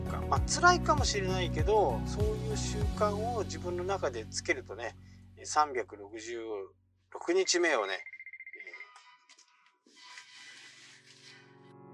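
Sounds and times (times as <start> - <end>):
speech: 0.3 - 8.1
phone ringtone for an incoming call: 7.3 - 9.3.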